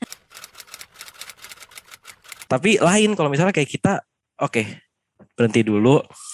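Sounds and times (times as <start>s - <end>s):
rapid keyboard typing: 0.0s - 2.5s
speech: 2.5s - 4.8s, 5.4s - 6.2s.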